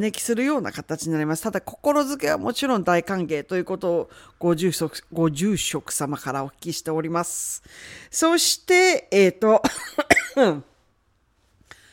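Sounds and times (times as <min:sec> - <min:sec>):
speech: 0:00.0 - 0:10.7
person coughing: 0:09.6 - 0:10.7.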